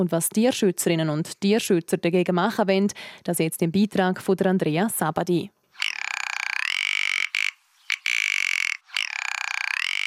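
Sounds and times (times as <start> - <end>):
speech: 0.0 - 5.6
rock ptarmigan calling in dry rattling croaking phrases: 5.8 - 10.0.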